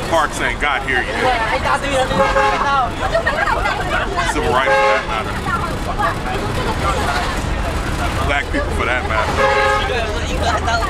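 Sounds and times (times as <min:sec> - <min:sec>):
many overlapping voices chattering in a crowded bus interior in downtown Mingho: 0:00.0 - 0:10.8
steady hum of traffic: 0:00.0 - 0:10.8
speech: 0:00.1 - 0:07.4, 0:08.0 - 0:10.8
car horn tooting: 0:02.0 - 0:02.9, 0:04.5 - 0:05.3, 0:09.2 - 0:10.1.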